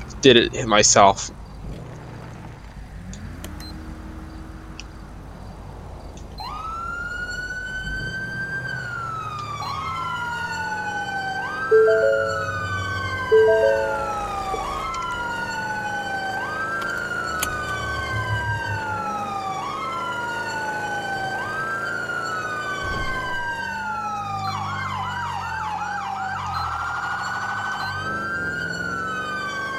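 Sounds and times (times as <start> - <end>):
speech: 0.2 - 1.4
police car siren wailing while responding code three: 6.5 - 29.7
police car horn blasts: 11.7 - 14.7.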